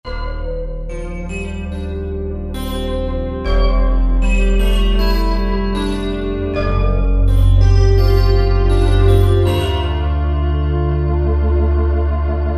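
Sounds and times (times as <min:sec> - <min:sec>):
digital synthesizer tone: 0:00.1 - 0:12.2.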